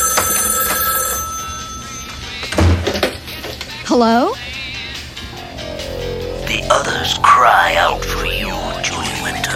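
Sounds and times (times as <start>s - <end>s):
telephone ringing with a trilling electronic bell tone: 0.0s - 2.5s
speech: 3.9s - 4.4s, 6.7s - 9.5s.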